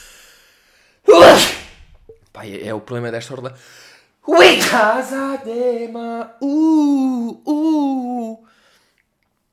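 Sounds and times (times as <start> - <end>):
sneeze caused by peppermint on the mustache: 1.1 - 2.0, 4.4 - 4.8
speech: 2.4 - 8.4.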